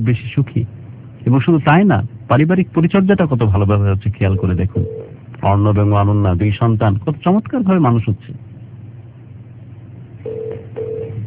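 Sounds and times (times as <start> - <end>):
speech: 0.0 - 8.4
low hum: 0.0 - 11.2
telephone ring tone during a phone call: 4.4 - 5.2, 10.2 - 11.2.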